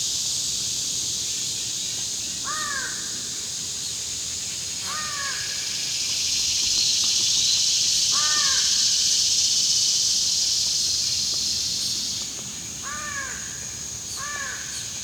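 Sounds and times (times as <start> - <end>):
continuous high-pitched hiss: 0.0 - 15.0
pair of American crows calling from a pine: 2.5 - 3.1, 4.8 - 5.6, 8.1 - 8.8, 12.8 - 13.6, 14.2 - 14.8.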